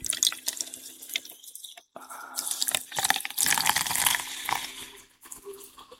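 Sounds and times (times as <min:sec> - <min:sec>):
Coca-Cola pouring into a glass with lime and rum: 0:00.0 - 0:01.3, 0:02.4 - 0:05.0.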